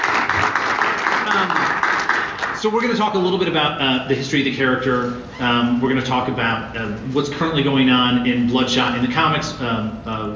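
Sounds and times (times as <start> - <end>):
crowd applauding: 0.0 - 2.7
speech: 2.6 - 10.3.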